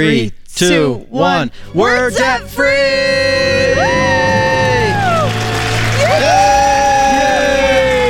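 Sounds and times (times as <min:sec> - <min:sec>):
speech: 0:00.0 - 0:04.5
family screaming and cheering in celebration: 0:03.0 - 0:08.0
family shouting in celebration: 0:03.1 - 0:08.0.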